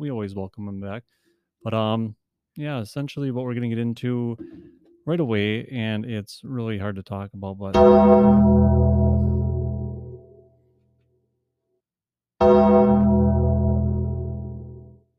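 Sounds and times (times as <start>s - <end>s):
speech: 0.0s - 9.0s
mourning bell tolling for a death: 7.8s - 10.4s, 12.4s - 14.9s.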